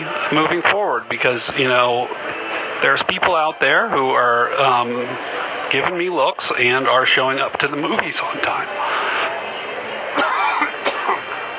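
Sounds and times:
speech: 0:00.3 - 0:09.1
harsh coughing from popcorn stuck in the throat: 0:10.2 - 0:11.3.

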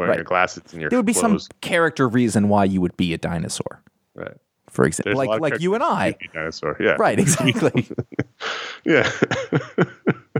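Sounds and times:
speech: 0:00.0 - 0:03.8, 0:04.7 - 0:08.1, 0:08.8 - 0:10.0
laughter: 0:07.0 - 0:10.3
raspy intake of breath: 0:08.4 - 0:08.9.

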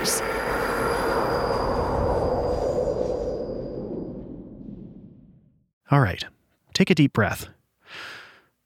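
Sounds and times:
subway train approaching with a loud broad rumbling roar: 0:00.0 - 0:03.3
speech: 0:05.9 - 0:08.1.

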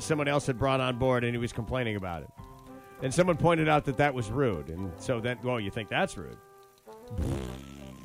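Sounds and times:
speech: 0:00.0 - 0:06.5, 0:07.1 - 0:07.7
fart sound effect: 0:07.1 - 0:08.0.

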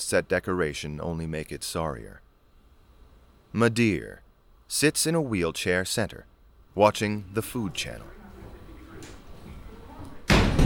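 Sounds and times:
speech: 0:00.0 - 0:02.3, 0:03.5 - 0:08.2
murmuring room tone: 0:01.7 - 0:10.6
door slamming shut: 0:10.2 - 0:10.6.

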